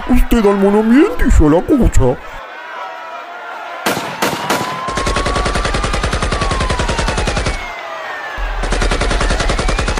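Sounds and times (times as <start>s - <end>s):
speech: 0.1s - 2.3s
gunfire during a riot: 3.8s - 7.7s, 8.4s - 9.9s.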